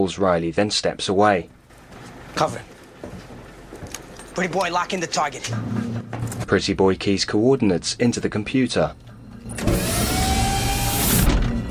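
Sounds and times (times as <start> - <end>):
speech: 0.0 - 1.6, 2.3 - 3.2, 4.4 - 9.0
covers sliding off truck-mounted rocket launchers with a mechanical whir: 9.4 - 11.6.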